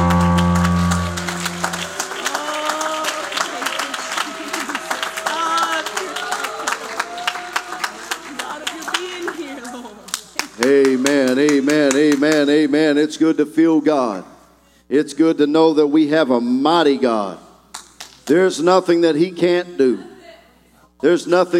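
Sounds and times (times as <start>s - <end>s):
sustained tone: 0.0s - 2.0s
audience clapping hands in praise: 0.0s - 12.5s
speech: 12.5s - 14.3s, 14.9s - 17.4s, 18.3s - 20.1s, 21.0s - 21.5s.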